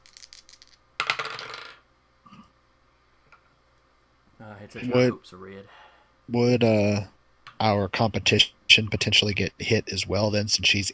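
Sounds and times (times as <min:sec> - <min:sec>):
dice being shaken during a tabletop wargame: 0:00.0 - 0:01.8
speech: 0:04.4 - 0:10.9.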